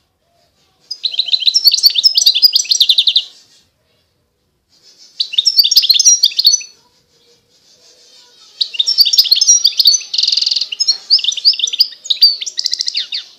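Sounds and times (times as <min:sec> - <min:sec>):
wild European goldfinch song of quick high chattering twitters: 0:00.9 - 0:03.3, 0:05.2 - 0:06.7, 0:08.6 - 0:13.3.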